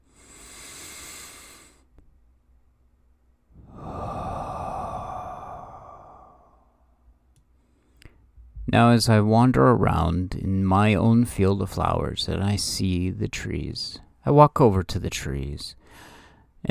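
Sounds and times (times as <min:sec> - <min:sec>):
deep breathing during a guided relaxation: 0:00.0 - 0:01.9, 0:03.6 - 0:08.1, 0:15.8 - 0:16.6
speech: 0:08.7 - 0:16.6.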